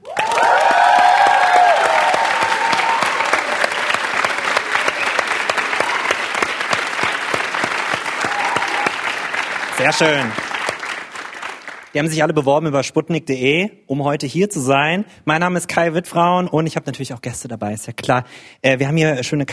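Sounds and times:
live crowd cheering and whooping at a talk event in a concert hall: 0:00.0 - 0:10.6
live crowd applauding at a talk event in a concert hall: 0:00.0 - 0:12.2
speech: 0:09.8 - 0:10.4, 0:11.9 - 0:19.5.

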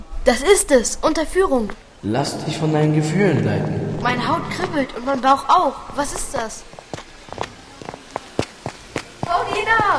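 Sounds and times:
speech: 0:00.2 - 0:06.7
footsteps approaching: 0:03.5 - 0:09.9.

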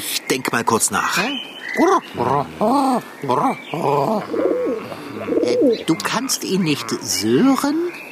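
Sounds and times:
speech: 0:00.3 - 0:08.0
pigeon cooing: 0:02.1 - 0:06.2.

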